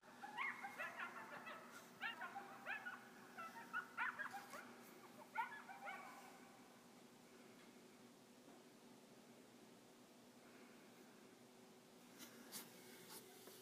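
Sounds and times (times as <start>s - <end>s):
red fox kits giving high whiny yelps and squeals: 0.1s - 6.4s.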